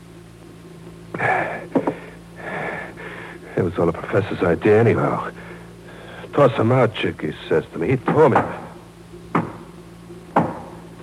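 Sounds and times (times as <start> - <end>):
quiet low hum: 0.0 - 11.0
speech: 3.6 - 5.5, 6.4 - 8.6
knocking on a door: 9.3 - 9.6.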